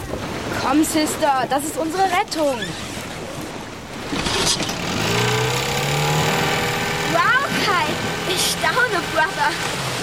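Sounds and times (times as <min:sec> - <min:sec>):
speech: 0:00.7 - 0:02.9, 0:04.5 - 0:04.8, 0:07.1 - 0:09.9
small outboard motor of an inflatable boat starting and running: 0:02.0 - 0:10.0.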